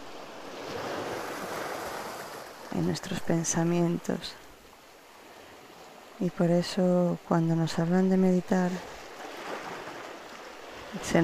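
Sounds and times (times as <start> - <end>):
ocean waves crashing against rocks: 0.0 - 3.8, 8.9 - 11.2
speech: 2.7 - 4.4, 6.2 - 9.0, 10.9 - 11.2.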